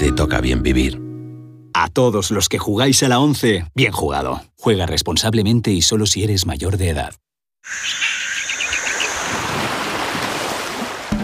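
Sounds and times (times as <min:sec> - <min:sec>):
speech: 0:00.1 - 0:01.0, 0:01.8 - 0:08.1
bird chirps: 0:07.6 - 0:09.4
Caribbean beach surf waves: 0:07.7 - 0:11.2.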